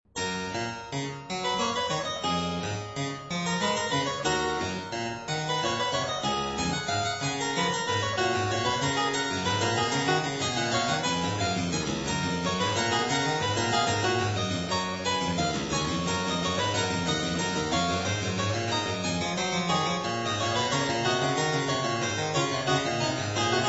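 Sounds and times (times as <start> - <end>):
keyboard piece for two manuals: 0.1 - 23.6.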